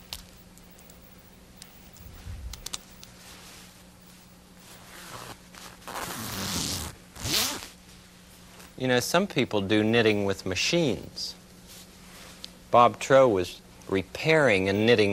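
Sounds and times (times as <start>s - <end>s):
fabric rustling: 2.1s - 8.8s
zipper on a sweater being pulled up: 4.6s - 7.8s
speech: 8.8s - 11.4s, 12.7s - 15.1s.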